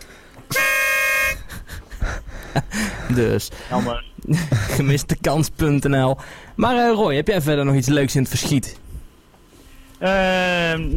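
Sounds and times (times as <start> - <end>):
car horn honking: 0.5 - 1.5
speech: 3.1 - 8.8, 10.0 - 10.9.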